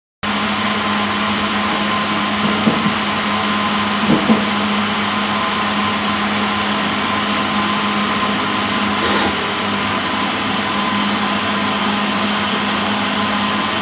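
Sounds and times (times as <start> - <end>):
factory production noise: 0.3 - 13.8.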